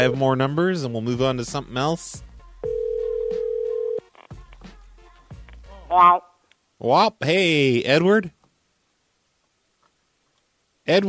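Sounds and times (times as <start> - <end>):
speech: 0.0 - 2.3, 5.9 - 8.4, 10.9 - 11.0
ringback tone from an outgoing phone call: 2.6 - 4.0.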